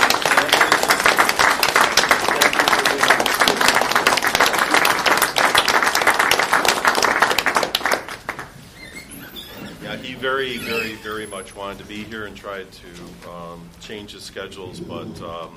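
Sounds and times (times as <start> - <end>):
audience applause: 0.0 - 8.6
speech: 10.4 - 15.5.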